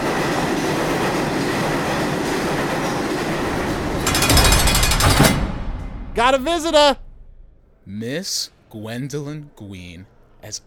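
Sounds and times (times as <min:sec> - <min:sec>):
subway train heading to Rikers rumbling along rails: 0:00.0 - 0:07.9
harsh metallic rattle of subway train: 0:03.4 - 0:07.8
speech: 0:06.2 - 0:07.0, 0:07.9 - 0:10.6.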